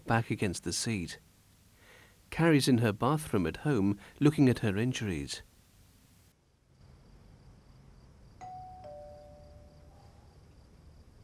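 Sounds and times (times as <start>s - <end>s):
low steady room hum: 0.0s - 11.2s
speech: 0.1s - 1.3s, 2.3s - 5.5s
two-tone doorbell chime: 8.4s - 10.0s.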